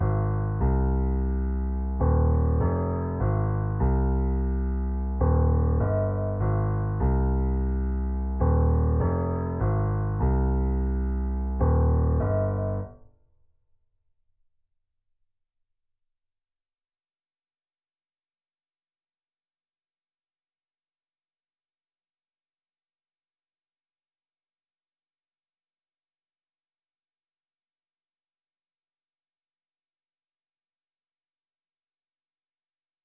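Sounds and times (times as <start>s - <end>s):
piano loop at 150 BPM in C minor: 0.0s - 13.0s.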